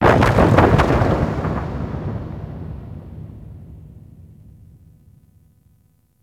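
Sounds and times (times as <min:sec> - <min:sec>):
large thunder: 0:00.0 - 0:05.1.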